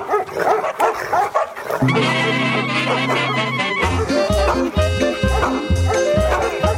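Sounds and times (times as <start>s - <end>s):
dogs barking and yipping: 0.0s - 6.7s
loud busy music track with sustained tones: 1.8s - 6.7s
heavy thumping bass beat: 2.0s - 6.7s.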